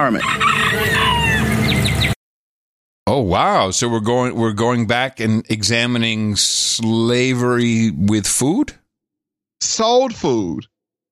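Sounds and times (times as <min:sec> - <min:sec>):
speech: 0:00.0 - 0:00.9, 0:03.1 - 0:08.8, 0:09.6 - 0:10.7
rooster crowing: 0:00.0 - 0:02.0
flock of chickens clucking and squawking: 0:00.1 - 0:02.2.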